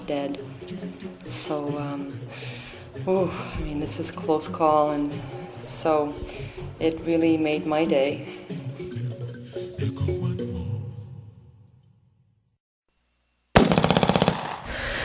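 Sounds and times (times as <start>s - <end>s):
music: 0.0s - 12.4s
speech: 0.1s - 8.6s
volley of gunshots in the night: 13.6s - 14.9s.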